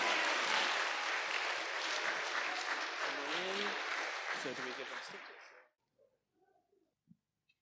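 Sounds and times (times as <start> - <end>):
cheers: 0.0 - 5.3
room full of people clapping: 0.0 - 5.7.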